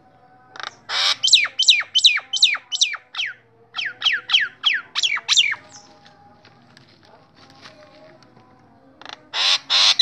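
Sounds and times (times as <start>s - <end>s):
Nias hill myna squawking: 0.6s - 5.8s, 9.0s - 10.0s.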